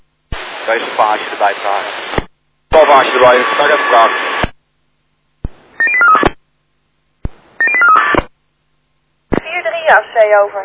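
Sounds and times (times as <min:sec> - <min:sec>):
speech: 0:00.7 - 0:04.5, 0:09.9 - 0:10.6
telephone keypad tones of a number being dialled: 0:05.7 - 0:06.3, 0:07.5 - 0:08.3.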